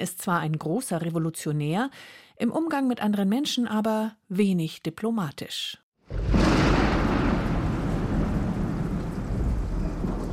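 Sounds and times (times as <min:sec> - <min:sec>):
speech: 0:00.0 - 0:06.2
deep rumbling thunder: 0:06.0 - 0:10.3
heavy downpour: 0:06.1 - 0:10.3.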